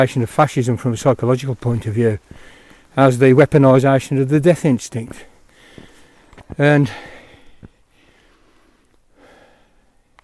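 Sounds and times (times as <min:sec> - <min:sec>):
speech: 0:00.0 - 0:05.3, 0:06.5 - 0:07.1
low steady hiss: 0:00.0 - 0:10.2
people breathing heavily while walking uphill outdoors: 0:02.2 - 0:03.0, 0:05.2 - 0:10.1.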